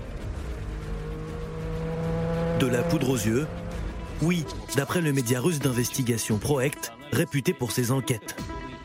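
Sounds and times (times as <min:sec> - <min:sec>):
race car engine passing: 0:00.0 - 0:04.3
speech: 0:02.6 - 0:03.6, 0:04.2 - 0:08.5.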